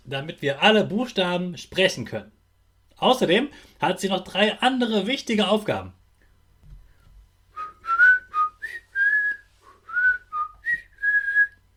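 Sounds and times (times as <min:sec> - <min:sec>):
speech: 0:00.1 - 0:02.4, 0:03.0 - 0:06.0
person whistling a short lively tune: 0:07.6 - 0:11.6.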